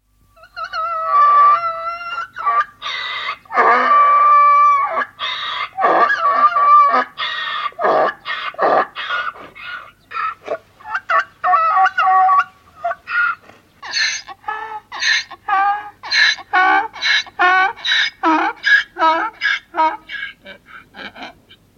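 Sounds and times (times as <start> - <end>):
donkey braying: 0.4 - 21.7.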